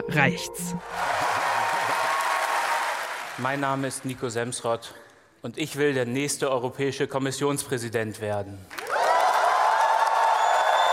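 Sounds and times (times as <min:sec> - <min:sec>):
speech: 0:00.1 - 0:01.2, 0:03.4 - 0:08.8
large audience applauding: 0:00.8 - 0:04.8, 0:08.7 - 0:10.9.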